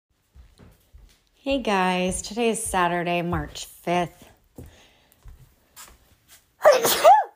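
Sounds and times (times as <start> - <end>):
speech: 1.4 - 4.7, 6.7 - 7.1
person sneezing: 6.6 - 7.3.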